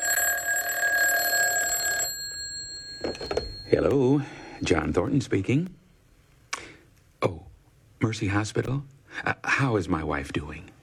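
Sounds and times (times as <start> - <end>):
loud bright electronic telephone ring downstairs: 0.0 - 4.0
speech: 3.0 - 5.8, 8.0 - 10.7.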